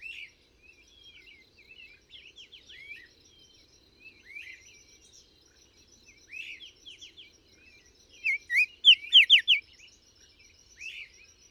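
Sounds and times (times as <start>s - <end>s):
bird singing bright high slurred whistles: 8.2s - 9.6s.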